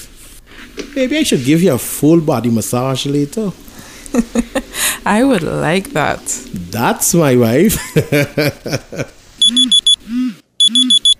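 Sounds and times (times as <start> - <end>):
speech: 1.0 - 9.8
laughter: 4.1 - 4.8, 7.7 - 9.2
electronic alarm beeping: 9.4 - 10.0, 10.6 - 11.1
brief vocal sound: 9.5 - 11.0.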